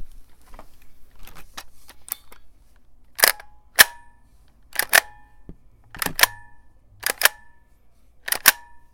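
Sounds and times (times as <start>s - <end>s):
Lancer Tactical LT15 airsoft rifle: 3.2s - 4.1s, 6.0s - 7.5s, 8.3s - 8.8s.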